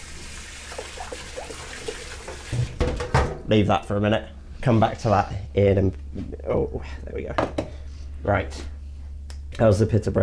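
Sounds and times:
tap water running over a pan being rinsed after frying chorizo and pancetta: 0:00.0 - 0:02.8
speech: 0:03.5 - 0:08.8, 0:09.6 - 0:10.2.

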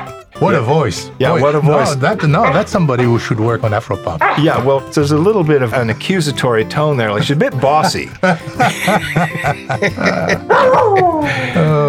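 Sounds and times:
dog barking, yelping and howling: 0:00.0 - 0:00.2, 0:01.2 - 0:03.3, 0:04.2 - 0:04.7, 0:10.1 - 0:11.3
speech: 0:00.4 - 0:11.8
laughter: 0:07.0 - 0:11.8.

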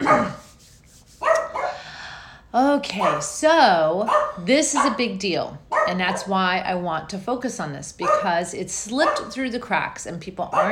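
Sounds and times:
puppy barking sharply: 0:00.0 - 0:00.4, 0:01.2 - 0:01.8, 0:02.9 - 0:03.4, 0:04.0 - 0:05.0, 0:05.7 - 0:06.3, 0:08.0 - 0:08.4, 0:09.0 - 0:09.3, 0:10.5 - 0:10.7
speech: 0:02.5 - 0:10.7.

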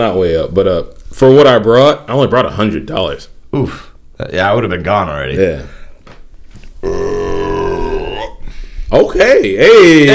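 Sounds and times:
speech: 0:00.0 - 0:05.8, 0:08.9 - 0:10.1
loud drawn-out belch: 0:06.8 - 0:08.4.

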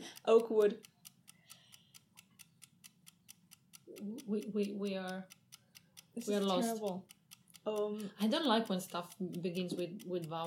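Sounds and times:
clock ticking: 0:00.0 - 0:10.4
speech: 0:00.2 - 0:00.9, 0:04.0 - 0:05.4, 0:06.2 - 0:10.4.

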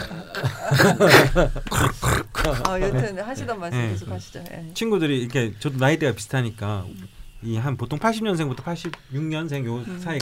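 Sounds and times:
person making snore-like nasal snorts and grunting breaths: 0:00.0 - 0:02.7
laughter: 0:00.0 - 0:04.2
speech: 0:00.4 - 0:10.1.

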